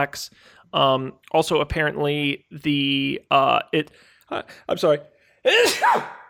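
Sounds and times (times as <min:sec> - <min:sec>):
speech: 0:00.0 - 0:06.2
person sneezing: 0:05.5 - 0:06.2.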